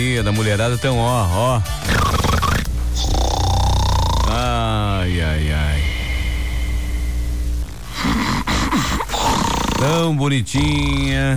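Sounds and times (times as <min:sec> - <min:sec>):
speech: 0:00.0 - 0:02.4, 0:04.4 - 0:05.9, 0:09.8 - 0:11.3
voice imitating loud snoring: 0:01.9 - 0:06.8, 0:07.8 - 0:11.3.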